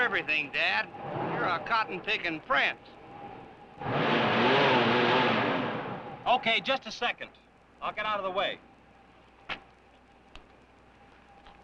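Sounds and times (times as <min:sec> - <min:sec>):
car engine idling and revving with fender cutting into the wheel: 0:00.0 - 0:06.3
speech: 0:00.1 - 0:03.0, 0:03.8 - 0:04.6, 0:06.3 - 0:08.7.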